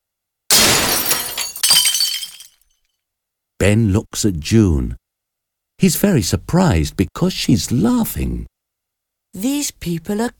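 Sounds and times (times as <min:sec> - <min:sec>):
glass shards and debris scattering: 0:00.5 - 0:02.6
large shop window glass pane shattering: 0:00.5 - 0:02.6
speech: 0:03.6 - 0:05.0, 0:05.8 - 0:08.5, 0:09.3 - 0:10.3.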